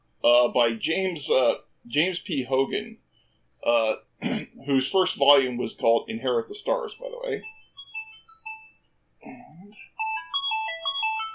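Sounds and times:
speech: 0.4 - 3.0, 3.6 - 7.6
phone ringtone chiming in bright electronic tones: 7.4 - 8.8, 10.0 - 11.3.

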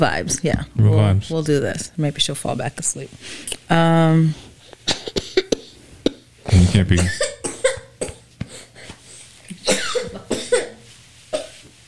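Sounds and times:
speech: 0.0 - 4.5, 6.6 - 7.3
low hum: 0.0 - 11.8
girl coughing in bed: 4.9 - 8.8, 9.6 - 11.6.

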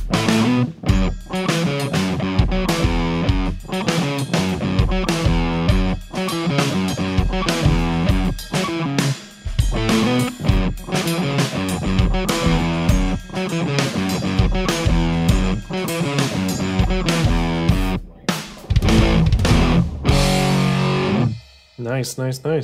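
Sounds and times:
guitar through an overdriven tube amp playing chords and notes: 0.1 - 21.5
speech: 22.1 - 22.6.

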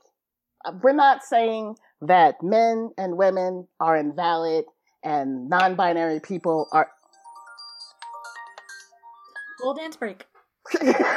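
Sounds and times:
speech: 0.6 - 7.0, 9.6 - 11.1
default phone ringtone with chiming electronic tune: 6.2 - 10.2.

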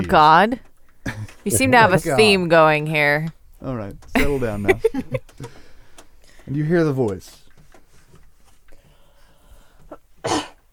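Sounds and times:
speech: 0.0 - 0.7, 1.4 - 5.6, 6.5 - 7.4
laughter: 1.1 - 2.4, 4.2 - 5.5
person clearing throat: 10.2 - 10.6.

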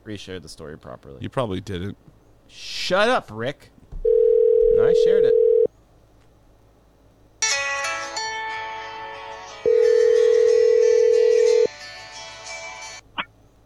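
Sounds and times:
speech: 0.0 - 3.8, 4.8 - 5.3
telephone dial tone: 4.0 - 5.7, 9.7 - 11.7.

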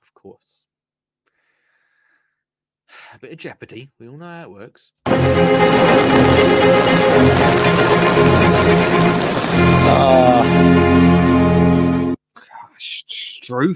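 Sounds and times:
speech: 0.2 - 0.7, 3.1 - 7.2, 8.2 - 11.0, 12.8 - 13.7
steady rain pattering on a hard surface: 5.1 - 12.0
sustained tonal music: 5.1 - 12.2.

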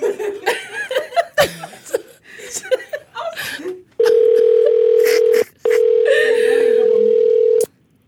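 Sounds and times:
person chuckling and laughing: 0.0 - 7.1
phone line ringback tone of an outgoing call: 4.0 - 7.7.

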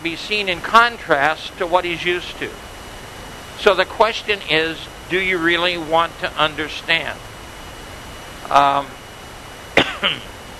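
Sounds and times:
speech: 0.0 - 2.7, 3.6 - 7.3, 8.5 - 9.0, 10.0 - 10.3
person with hurt ribs coughing: 9.8 - 10.3
short voiced throat sound: 9.8 - 10.3.

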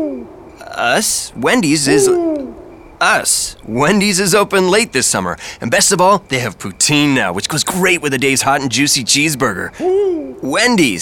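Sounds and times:
voice imitating owl hoots: 0.0 - 1.0, 1.7 - 2.8, 9.7 - 10.5
speech: 0.0 - 11.0.

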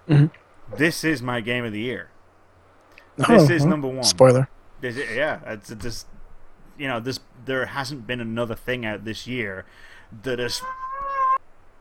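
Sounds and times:
speech: 0.1 - 2.1, 3.2 - 6.1, 6.8 - 10.8
cat meowing: 10.4 - 11.4.

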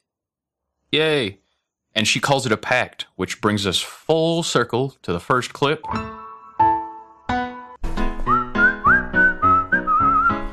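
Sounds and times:
speech: 0.9 - 1.4, 2.0 - 6.2
people whistling a tune: 8.3 - 10.4.

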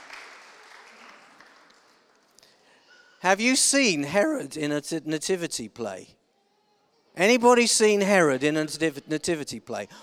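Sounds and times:
audience applause: 0.0 - 2.4
speech: 3.2 - 6.2, 7.2 - 10.0.

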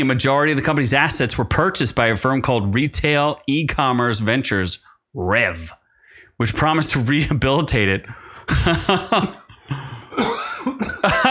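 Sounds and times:
speech: 0.0 - 5.8, 6.4 - 11.2
short wheezy breaths: 5.8 - 6.4, 8.1 - 8.5
laughter: 8.5 - 11.2
harsh rasping coughs: 9.2 - 11.2.

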